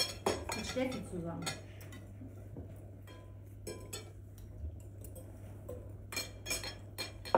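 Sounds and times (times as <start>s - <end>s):
metal knife and fork clinking on plates while eating salad: 0.0s - 2.1s, 3.0s - 4.2s, 5.0s - 7.3s
low steady hum: 0.0s - 7.3s
speech: 0.8s - 1.7s.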